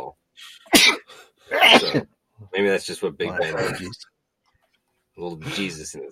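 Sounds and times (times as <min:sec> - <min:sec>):
loud sneezes: 0:00.5 - 0:02.1
speech: 0:01.9 - 0:04.1, 0:05.2 - 0:06.1.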